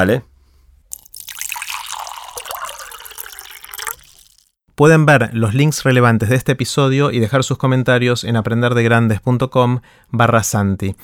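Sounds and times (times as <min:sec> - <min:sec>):
speech: 0:00.0 - 0:00.3, 0:04.8 - 0:11.0
water pouring into a glass: 0:00.9 - 0:04.5.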